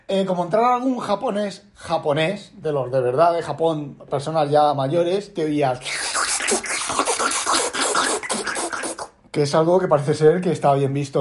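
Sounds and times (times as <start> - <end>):
speech: 0.1 - 7.1, 9.4 - 11.2
person imitating slurping noodle soup with the mouth: 5.8 - 9.2.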